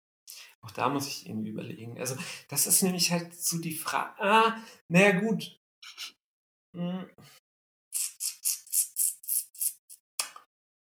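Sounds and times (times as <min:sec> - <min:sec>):
speech: 0:00.6 - 0:06.2, 0:06.8 - 0:07.4
person sucking air sharply through the teeth: 0:07.9 - 0:10.3.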